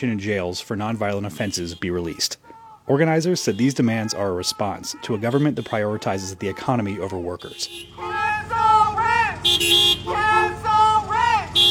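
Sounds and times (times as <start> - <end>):
speech: 0.0 - 8.2, 9.5 - 10.8
hissy street noise: 0.0 - 11.6
car horns honking from protest caravan: 1.2 - 11.6.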